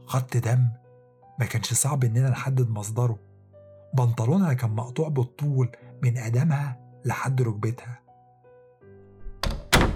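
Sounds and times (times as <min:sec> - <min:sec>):
speech: 0:00.1 - 0:00.8, 0:01.4 - 0:03.3, 0:03.9 - 0:08.0
door swinging and shutting: 0:09.1 - 0:09.9.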